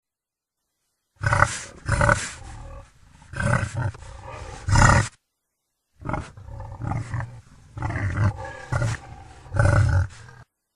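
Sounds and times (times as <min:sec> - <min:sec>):
wild boar harsh throaty grunts and growls: 0:01.2 - 0:05.2, 0:06.0 - 0:10.5.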